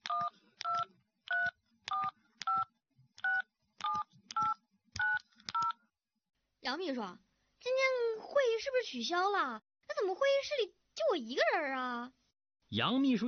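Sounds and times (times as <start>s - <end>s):
telephone keypad dual-pitched tones: 0.0s - 5.8s
speech: 6.7s - 13.2s.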